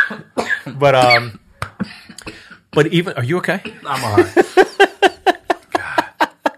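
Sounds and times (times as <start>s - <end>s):
man choking with sputtering coughs: 0.0s - 3.0s, 3.6s - 4.4s
speech: 0.1s - 2.0s, 2.8s - 4.8s
man's strained wheezy laugh: 4.0s - 6.5s.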